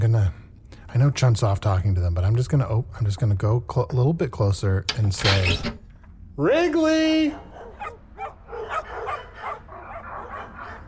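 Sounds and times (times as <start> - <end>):
speech: 0.2 - 5.8, 6.4 - 7.4
chorus of dogs barking and yipping: 7.2 - 10.8.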